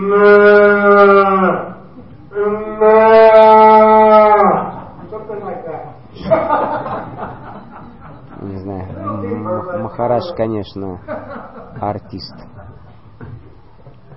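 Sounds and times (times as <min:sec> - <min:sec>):
speech: 0:00.0 - 0:00.6, 0:10.1 - 0:12.6
man imitating a bull's lowing: 0:00.0 - 0:04.8
laughter: 0:04.6 - 0:13.1.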